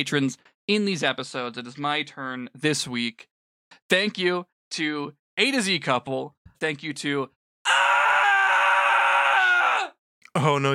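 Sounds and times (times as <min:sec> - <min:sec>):
speech: 0:00.0 - 0:07.4, 0:10.4 - 0:10.7
person screaming: 0:07.6 - 0:10.0.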